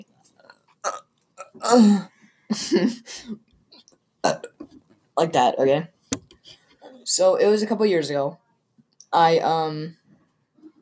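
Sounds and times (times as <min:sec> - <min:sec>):
croaky belch into the microphone: 0:00.8 - 0:02.1, 0:04.2 - 0:04.7
speech: 0:01.6 - 0:03.5, 0:04.2 - 0:04.5, 0:05.2 - 0:06.0, 0:07.1 - 0:08.4, 0:09.1 - 0:10.0.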